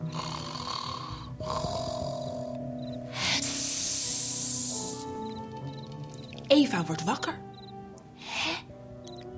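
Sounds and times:
low snoring: 0:00.0 - 0:05.1
snake hissing: 0:00.0 - 0:05.6, 0:08.2 - 0:08.7
speech: 0:06.5 - 0:07.5.

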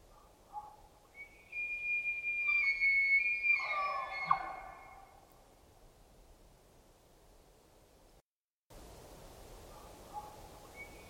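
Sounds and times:
Roosevelt elk bugling in Queets and Quinault rainforest river valleys: 0:01.4 - 0:05.2.

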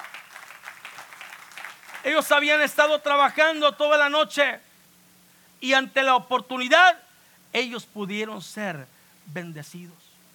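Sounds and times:
crowd applauding: 0:00.0 - 0:02.3
speech: 0:02.0 - 0:04.7, 0:05.6 - 0:10.1.

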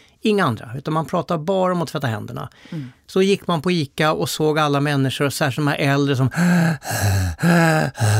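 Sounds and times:
speech: 0:00.2 - 0:08.1
person imitating heavy gasping mouth breathing: 0:02.6 - 0:03.0, 0:06.3 - 0:08.1.

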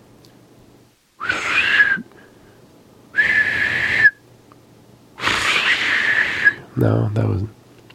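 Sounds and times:
person whistling a sparrow's call: 0:01.2 - 0:02.3, 0:03.2 - 0:04.2, 0:05.2 - 0:06.7
speech: 0:06.8 - 0:07.6.

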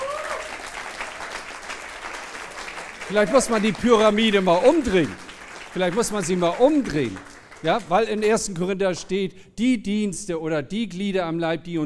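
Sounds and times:
crowd clapping: 0:00.0 - 0:09.2
speech: 0:03.1 - 0:05.2, 0:05.8 - 0:11.8.

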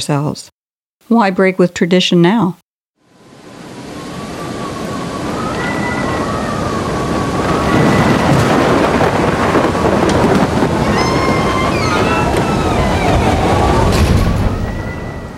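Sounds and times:
speech: 0:00.0 - 0:02.6
heavy rain in a thunderstorm: 0:03.0 - 0:15.3
deep rolling thunder: 0:03.6 - 0:15.3.

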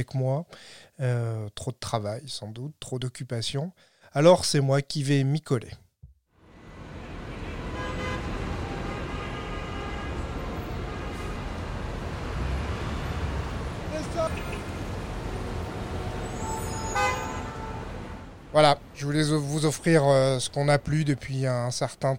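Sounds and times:
speech: 0:00.0 - 0:05.8, 0:18.6 - 0:22.1
busy city street traffic rumbling: 0:06.4 - 0:22.0
car horns honking, some sustained and others short: 0:06.5 - 0:18.3.

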